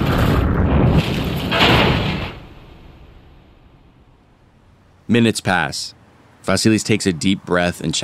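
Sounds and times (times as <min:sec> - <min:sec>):
car tumbling down embankment and crashing: 0:00.0 - 0:04.8
speech: 0:05.1 - 0:08.0.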